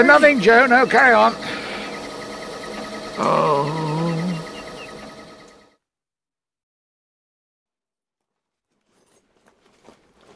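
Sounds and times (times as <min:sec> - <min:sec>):
speech: 0:00.0 - 0:01.6, 0:03.2 - 0:03.9
apple scratter running, pulping apples: 0:00.0 - 0:05.4
faint clicks and rustles: 0:08.6 - 0:10.3.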